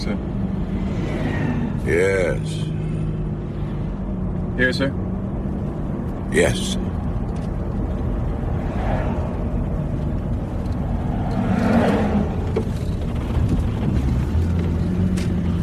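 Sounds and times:
moving car engine rumble: 0:00.0 - 0:15.6
road hum from a moving car: 0:00.0 - 0:15.6
speech: 0:01.9 - 0:02.8, 0:04.6 - 0:05.0, 0:06.3 - 0:06.9.

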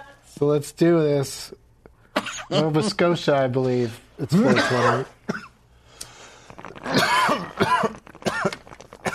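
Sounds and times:
speech: 0:00.4 - 0:01.6, 0:02.5 - 0:05.5
harsh raspy coughing after smoking: 0:02.1 - 0:03.0, 0:04.3 - 0:05.6, 0:06.9 - 0:09.1.

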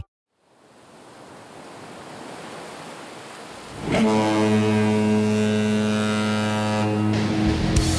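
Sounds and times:
ocean surf washing ashore: 0:00.4 - 0:06.2
loud deep ship's horn blast: 0:03.8 - 0:07.9.

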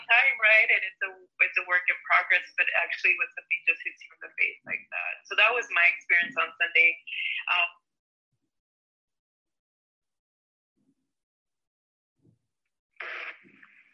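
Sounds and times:
voice on a phone call: 0:00.0 - 0:07.7
speech: 0:00.1 - 0:07.8.

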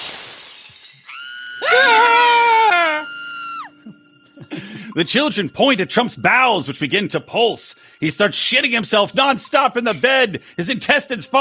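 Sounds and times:
burst of shattering noise: 0:00.0 - 0:01.2
fainter sustained wail: 0:01.1 - 0:03.8
woman screaming loudly and shrilly: 0:01.1 - 0:03.8
speech: 0:05.0 - 0:11.3.

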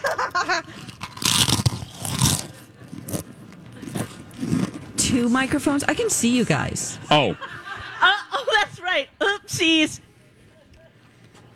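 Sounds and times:
laughter: 0:00.0 - 0:00.9, 0:07.0 - 0:09.0
crunchy food being chewed: 0:00.6 - 0:05.0
speech: 0:05.1 - 0:07.6, 0:09.6 - 0:10.1.

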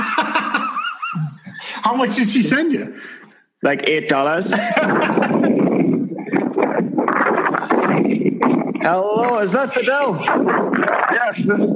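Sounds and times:
laughter: 0:00.0 - 0:01.9, 0:04.4 - 0:08.8
speech: 0:01.8 - 0:05.4, 0:08.9 - 0:11.7
wind buffeting a phone microphone outdoors during a phone call: 0:04.7 - 0:11.7.

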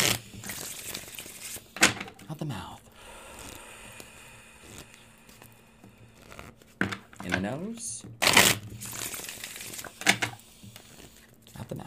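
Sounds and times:
deck of tarot cards being shuffled: 0:00.0 - 0:02.1, 0:06.1 - 0:07.6, 0:08.2 - 0:11.8
speech: 0:02.3 - 0:02.9, 0:07.4 - 0:08.5.

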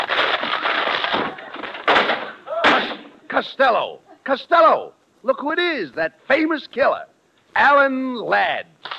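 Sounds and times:
door being smashed through: 0:00.0 - 0:03.1
person crying out: 0:02.4 - 0:02.8
speech: 0:03.4 - 0:08.7.

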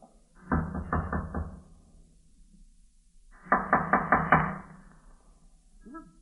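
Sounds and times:
firm knocking on a wooden door of an old tenement: 0:00.4 - 0:01.6, 0:03.5 - 0:04.6.

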